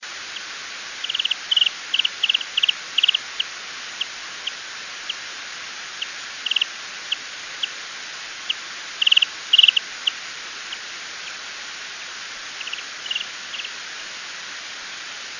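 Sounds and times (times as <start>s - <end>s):
Townsend's solitaire social trill: 1.0s - 3.5s, 6.0s - 6.7s, 9.0s - 10.2s, 12.6s - 13.7s.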